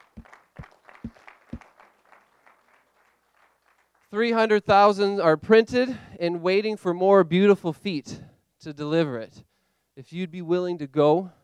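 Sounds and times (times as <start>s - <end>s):
crowd clapping together: 0.0s - 4.2s
speech: 4.1s - 11.4s.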